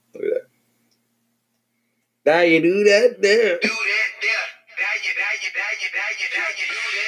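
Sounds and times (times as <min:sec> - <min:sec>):
speech: 0:02.3 - 0:03.9
rapped vocals over a hip-hop beat: 0:03.3 - 0:07.0
hip-hop beat from 2007 through a small phone speaker: 0:03.6 - 0:07.0.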